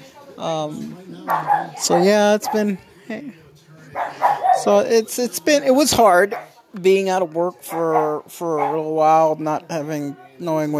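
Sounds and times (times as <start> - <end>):
speech: 0.4 - 10.7
dogs barking and yipping: 1.2 - 2.8, 4.0 - 4.9, 6.2 - 6.6, 7.7 - 9.1.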